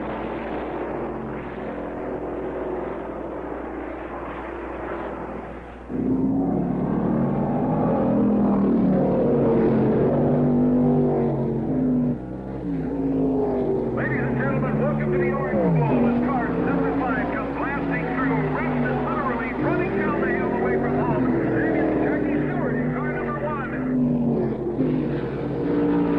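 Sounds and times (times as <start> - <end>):
Can-Am race car engines rumbling and revving on pace lap: 0.0 - 26.1.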